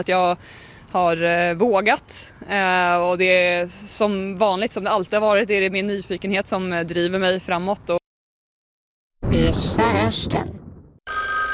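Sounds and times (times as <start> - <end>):
speech: 0.0 - 8.0, 9.3 - 11.2
old-style telephone bell ringing: 11.1 - 11.5.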